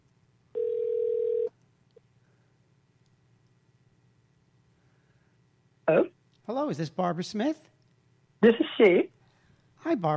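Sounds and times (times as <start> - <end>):
faint low hum: 0.0 - 10.1
telephone dial tone: 0.6 - 1.5
speech: 5.9 - 7.7, 8.4 - 9.1, 9.8 - 10.1.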